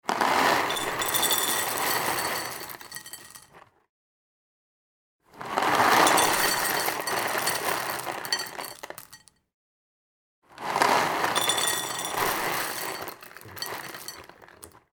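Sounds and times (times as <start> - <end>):
dry cereal poured into a glass bowl: 0.1 - 3.5, 5.4 - 9.2, 10.6 - 14.8.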